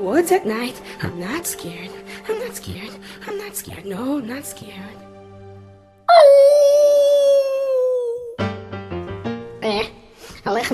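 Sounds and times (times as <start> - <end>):
speech: 0.0 - 5.1, 9.7 - 10.7
wolf howling in the woods at night: 6.1 - 8.4.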